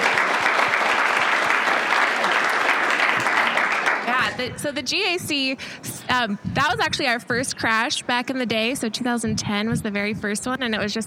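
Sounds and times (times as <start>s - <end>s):
group applauding: 0.0s - 4.3s
speech: 4.4s - 11.0s.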